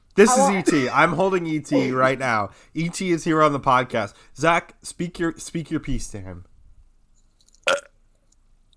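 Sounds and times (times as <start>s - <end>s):
speech: 0.2s - 6.5s, 7.7s - 7.9s
loud drawn-out burp: 7.7s - 7.9s.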